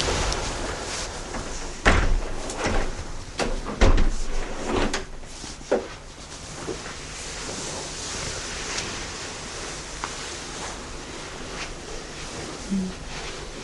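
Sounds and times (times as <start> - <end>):
windows being closed in a room: 0.0 - 5.8
hiss: 0.0 - 13.6.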